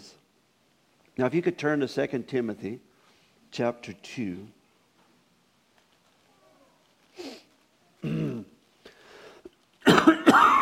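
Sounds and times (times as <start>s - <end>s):
speech: 1.2s - 2.9s, 3.5s - 4.6s
person coughing with rough hacking: 8.0s - 8.6s, 9.8s - 10.6s
throat clearing: 8.0s - 8.6s.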